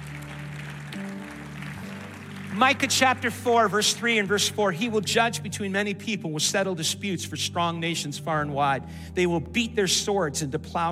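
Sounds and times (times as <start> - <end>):
audience clapping in praise: 0.0 - 4.6
speech: 2.6 - 10.8.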